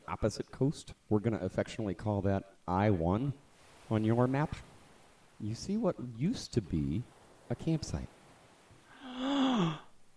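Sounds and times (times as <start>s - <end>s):
speech: 0.1s - 4.7s, 5.4s - 8.2s
person gasping: 8.9s - 10.0s.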